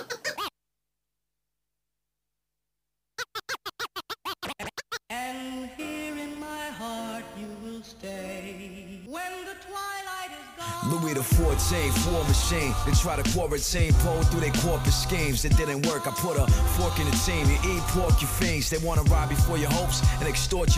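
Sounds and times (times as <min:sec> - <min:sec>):
rhythmic turntable scratches: 0:03.2 - 0:05.0, 0:10.9 - 0:20.7
hip-hop music track: 0:10.6 - 0:20.7
speech: 0:10.9 - 0:20.7.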